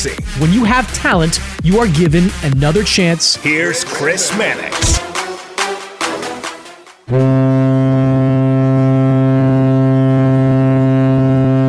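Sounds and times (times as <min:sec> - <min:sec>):
speech: 0:00.0 - 0:05.1, 0:07.1 - 0:07.8
laughter: 0:03.4 - 0:05.0
horn of a ship coming in: 0:07.1 - 0:11.6.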